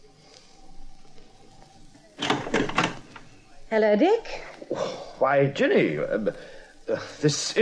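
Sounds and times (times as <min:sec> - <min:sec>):
apartment door latch and handle clicks: 0:02.2 - 0:03.3
speech: 0:03.7 - 0:07.6.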